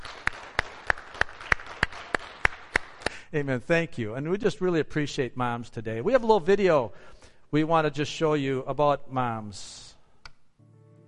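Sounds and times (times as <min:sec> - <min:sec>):
audience applauding: 0:00.0 - 0:03.2
sharp evenly timed claps in a steady rhythm: 0:00.0 - 0:03.2
speech: 0:03.3 - 0:09.8.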